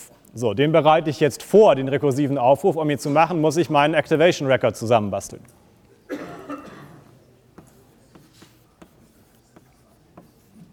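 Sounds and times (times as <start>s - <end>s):
speech: 0.4s - 5.7s
writing on a board during a lecture: 7.0s - 10.7s.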